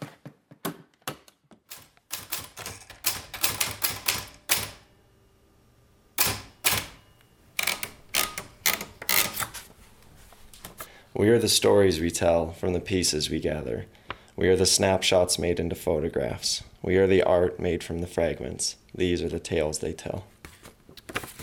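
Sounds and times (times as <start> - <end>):
typewriter typing on a little table in a kitchen: 1.7 - 4.9, 6.2 - 9.6
speech: 11.2 - 20.3.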